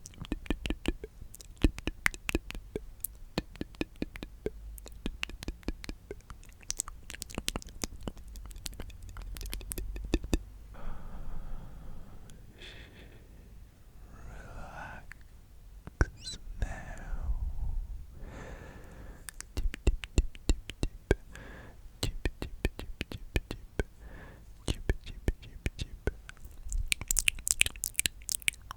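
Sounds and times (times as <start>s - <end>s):
rapid wet mouth clicks and pops: 0.0s - 10.5s, 15.1s - 17.1s, 19.2s - 21.3s, 22.0s - 24.0s, 24.6s - 28.7s.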